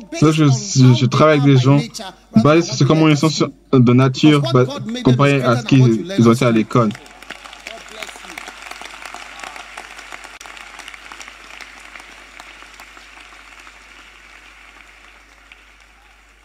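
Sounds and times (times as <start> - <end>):
speech: 0.1 - 7.1
crowd of children applauding: 6.2 - 16.4.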